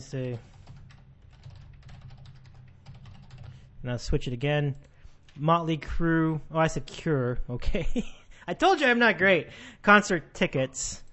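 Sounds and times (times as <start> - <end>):
speech: 0.0 - 0.5, 3.8 - 11.0
typing on a computer keyboard: 0.2 - 3.7.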